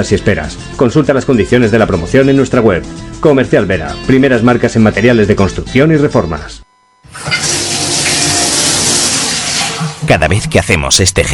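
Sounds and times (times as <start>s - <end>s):
speech: 0.0s - 7.4s, 10.1s - 11.3s
water gushing from a tap: 7.1s - 10.0s.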